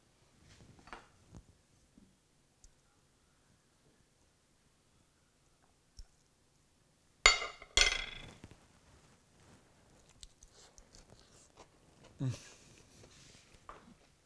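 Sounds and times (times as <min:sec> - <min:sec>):
fork clinking against a plate: 0:07.3 - 0:08.3
soft chewing of zucchini fritter: 0:09.6 - 0:14.1.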